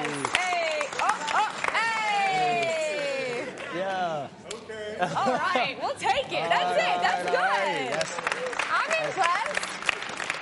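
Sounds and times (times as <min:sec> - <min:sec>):
small audience clapping: 0:00.0 - 0:03.7, 0:06.4 - 0:10.4
laughter: 0:04.8 - 0:05.9
speech: 0:05.0 - 0:08.4.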